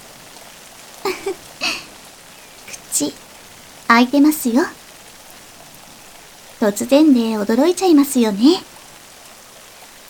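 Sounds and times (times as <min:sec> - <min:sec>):
rain splashes and drips landing on a surface in a forest: 0:00.0 - 0:10.0
speech: 0:03.0 - 0:03.3, 0:03.9 - 0:04.8, 0:06.6 - 0:08.7.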